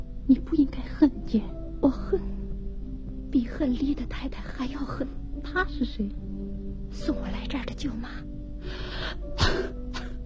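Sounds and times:
speech: 0.3 - 2.3, 3.6 - 9.8
woman coughing: 9.4 - 10.1.

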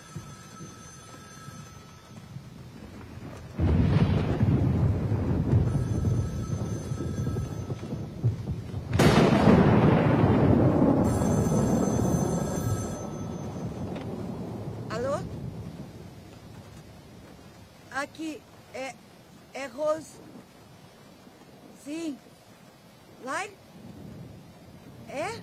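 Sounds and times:
wind-like noise of a thunderstorm: 1.4 - 25.4
dense low thunder of a thunderstorm: 2.3 - 17.2, 23.1 - 25.4
sharp heavier crack of thunder: 2.9 - 16.1.

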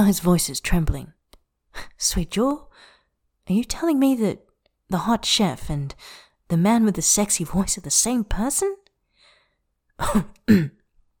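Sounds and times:
speech: 0.0 - 1.2, 1.8 - 2.9, 3.5 - 8.8, 10.0 - 10.8
startled man giving throaty coughs: 10.0 - 10.8.

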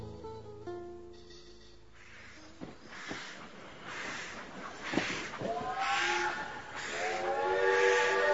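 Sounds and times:
steam train hissing bursts of steam: 2.0 - 8.3
steam train whistle at a railway station: 5.5 - 8.3.

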